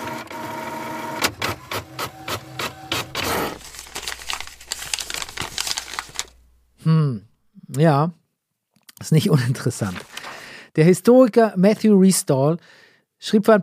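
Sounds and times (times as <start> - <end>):
printer clacking while printing a document: 0.0 - 3.6
printer whirring while printing a document: 0.0 - 4.6
paper feeding out of a printer: 0.0 - 6.5
speech: 7.7 - 8.2, 9.0 - 10.2, 10.8 - 13.6.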